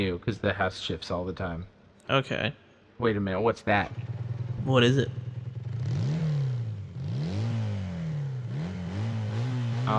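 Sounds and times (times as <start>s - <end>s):
speech: 0.0s - 5.2s
motorcycle engine revving: 3.7s - 9.9s.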